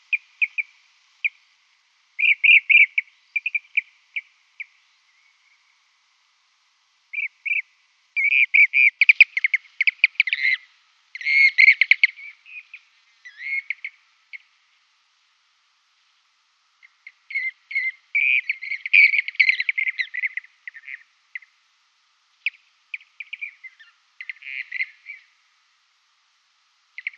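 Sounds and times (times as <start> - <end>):
Blue-cheeked bee-eater trilled calls: 0.0 - 1.4, 2.2 - 5.6, 7.1 - 14.6, 16.8 - 21.6, 22.4 - 25.4, 27.0 - 27.1.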